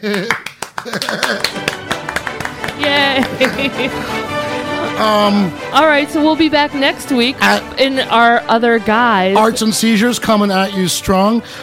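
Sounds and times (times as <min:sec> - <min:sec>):
speech: 0:00.0 - 0:01.8, 0:02.8 - 0:11.6
small group clapping: 0:00.0 - 0:04.0
laughter: 0:00.0 - 0:05.5.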